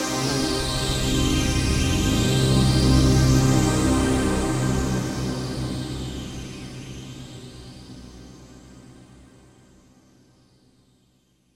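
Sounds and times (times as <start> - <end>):
Roland JD-990 synthesizer portamento: 0.2 - 7.5.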